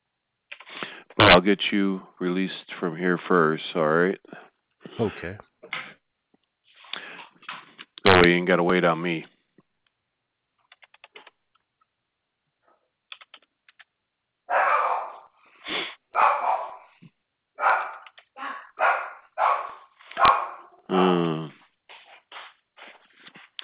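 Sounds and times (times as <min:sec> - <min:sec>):
speech: 0:01.3 - 0:05.5, 0:08.2 - 0:09.3
15-year-old dog barking: 0:14.5 - 0:15.4, 0:16.1 - 0:17.0, 0:17.6 - 0:18.0, 0:18.7 - 0:20.8.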